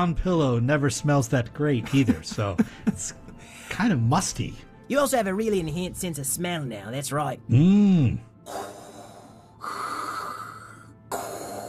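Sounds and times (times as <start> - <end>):
speech: 0.0 - 8.6
deep mechanical breathing of half-robotic shark creature: 8.5 - 11.6.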